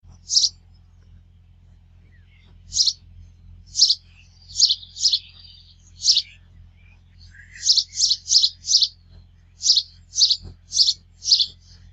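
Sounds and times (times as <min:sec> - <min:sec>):
house sparrow singing: 0:00.1 - 0:11.9.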